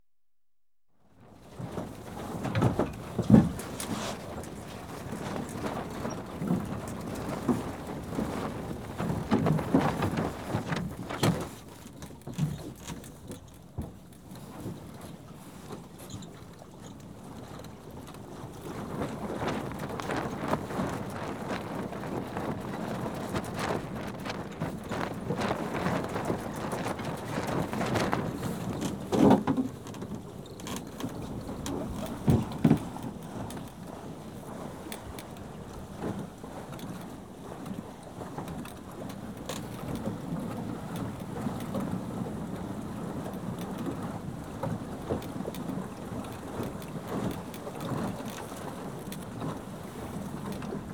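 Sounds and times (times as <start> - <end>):
sailing dinghy general activity: 1.0 - 50.9.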